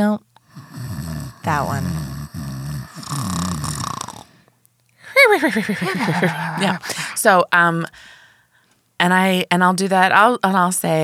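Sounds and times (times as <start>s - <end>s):
person imitating a loud rasping snore: 0.5s - 4.4s
speech: 1.4s - 2.1s, 5.4s - 8.2s, 9.0s - 11.0s
laughter: 5.1s - 7.2s.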